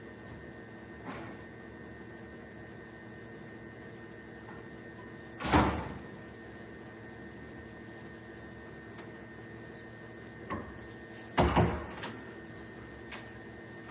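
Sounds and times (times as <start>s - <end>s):
steady low electrical hum: 0.0s - 13.8s
door thudding shut: 5.4s - 6.0s, 11.4s - 12.0s.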